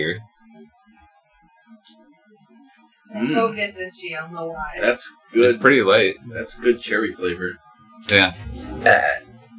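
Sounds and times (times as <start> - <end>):
speech: 0.0 - 0.3, 3.1 - 9.2
loud raspy burp: 8.8 - 9.3.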